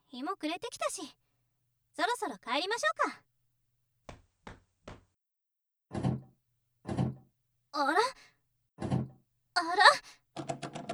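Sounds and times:
speech: 0:00.2 - 0:01.2, 0:02.0 - 0:03.3, 0:07.8 - 0:08.3, 0:09.6 - 0:10.2
stuck door of an old gym storage shed rattling and thunking: 0:10.4 - 0:10.9.

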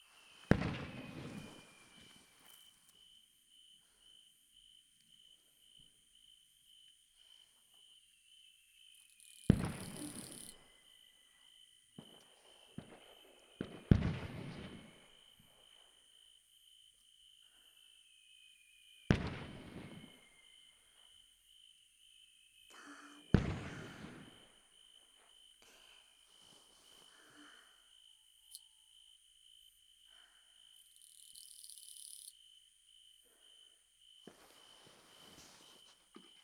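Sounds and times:
crickets chirping: 0:00.0 - 0:36.4
fireworks booming and crackling: 0:00.3 - 0:02.3, 0:09.5 - 0:10.6, 0:12.0 - 0:15.1, 0:19.1 - 0:20.2, 0:23.3 - 0:24.9.

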